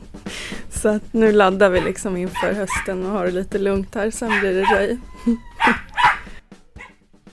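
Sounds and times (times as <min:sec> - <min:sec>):
speech: 0:00.8 - 0:05.8
dog barking: 0:01.8 - 0:03.0, 0:04.3 - 0:04.9, 0:05.6 - 0:07.0.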